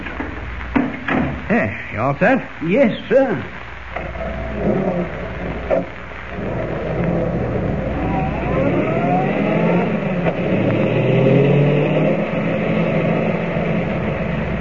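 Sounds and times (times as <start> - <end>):
speech: 1.5 - 6.5
car engine revving as the car pulls away and accelerates: 7.2 - 14.5.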